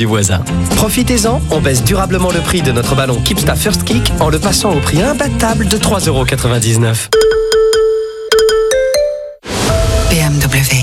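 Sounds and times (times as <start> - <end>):
speech: 0.0 - 7.6
phone notification alert electronic chimes: 7.2 - 10.1.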